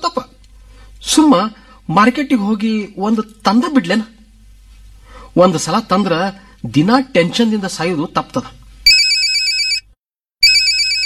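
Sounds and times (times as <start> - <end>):
speech: 1.1 - 4.2, 5.4 - 8.6
mobile phone ringtone ringing: 8.9 - 11.0.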